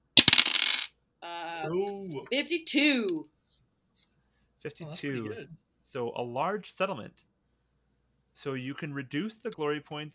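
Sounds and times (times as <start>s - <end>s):
pair of dice clattering onto a hard surface: 0.0s - 0.9s
speech: 1.6s - 3.3s, 4.6s - 7.3s, 8.4s - 10.1s.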